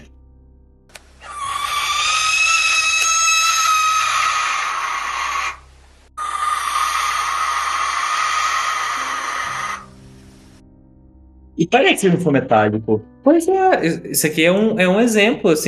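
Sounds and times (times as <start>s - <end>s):
barn owl screeching: 1.2s - 10.6s
speech: 11.6s - 15.6s.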